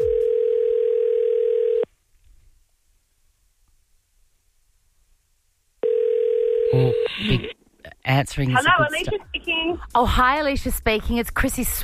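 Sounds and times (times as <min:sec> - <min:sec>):
buzzy ringing tone of an outgoing phone call: 0:00.0 - 0:01.9, 0:05.8 - 0:07.2
speech: 0:08.1 - 0:11.8.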